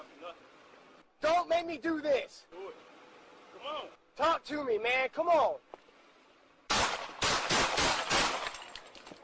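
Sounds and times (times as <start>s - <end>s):
speech: 0.3s - 2.9s, 3.6s - 5.8s
gunshots fired by a police officer: 6.7s - 8.8s.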